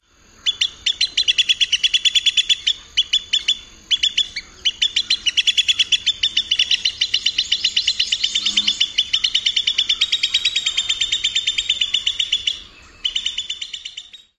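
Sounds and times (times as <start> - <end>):
rapid peeping alarm: 0.5 - 14.3.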